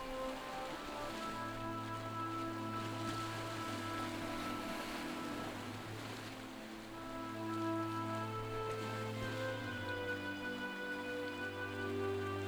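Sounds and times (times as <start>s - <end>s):
ocean waves rolling onto a beach: 0.0s - 12.4s
sustained soft tonal music drones: 0.0s - 12.4s.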